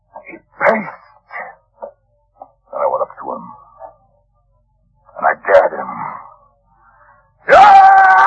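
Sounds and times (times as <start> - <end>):
person imitating a tiger scream: 7.5 - 8.2.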